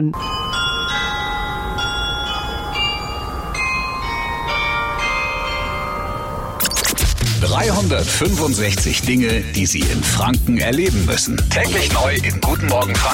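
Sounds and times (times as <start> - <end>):
speech: 0.0 - 0.4, 7.6 - 13.1
town hall glockenspiel of small bells chiming a slow melody: 0.1 - 6.6.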